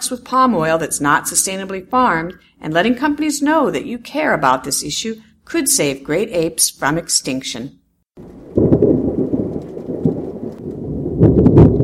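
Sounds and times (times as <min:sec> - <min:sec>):
speech: 0:00.1 - 0:08.3
deep thunder rumbling: 0:08.2 - 0:11.8
steady rainstorm: 0:08.2 - 0:11.8.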